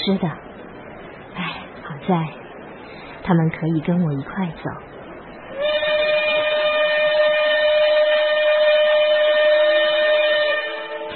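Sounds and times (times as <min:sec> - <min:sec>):
speech: 0:00.0 - 0:00.5, 0:02.1 - 0:02.4, 0:03.2 - 0:04.9
low rumbling background: 0:00.0 - 0:07.0
steam train whistle blast: 0:05.6 - 0:11.1.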